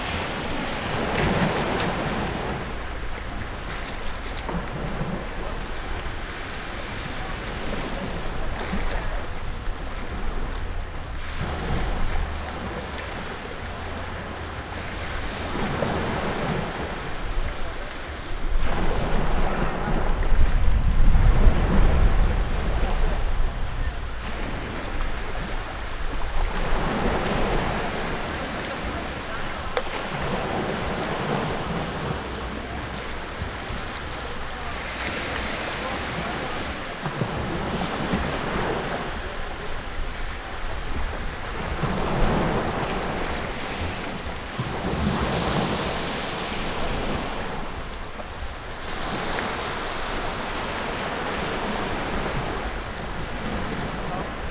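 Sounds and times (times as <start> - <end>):
sea waves on a beach: 0.0 - 54.4.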